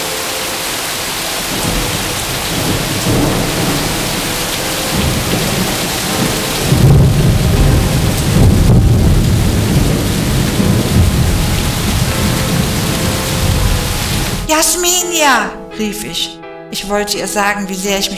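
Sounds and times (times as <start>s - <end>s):
heavy rain pelting on hard rock and stone steps: 0.0s - 14.5s
speech: 14.6s - 18.1s.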